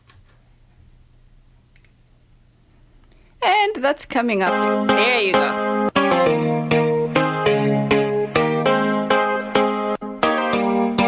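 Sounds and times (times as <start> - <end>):
speech: 3.6 - 5.7
Zambian song with bright plucked or struck notes: 4.5 - 11.0.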